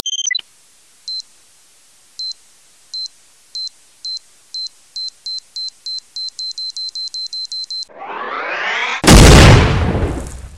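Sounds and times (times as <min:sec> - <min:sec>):
time bomb: 0:07.9 - 0:10.3.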